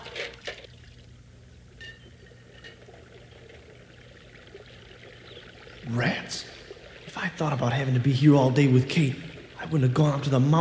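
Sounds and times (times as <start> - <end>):
water splashing: 0.0 - 10.5
river flowing: 0.7 - 10.5
speech: 5.9 - 6.5, 7.2 - 10.5.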